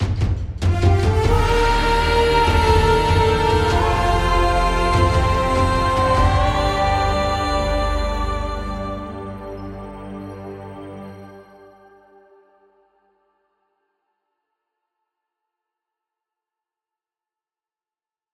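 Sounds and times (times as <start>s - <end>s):
win theme music: 0.0s - 12.2s.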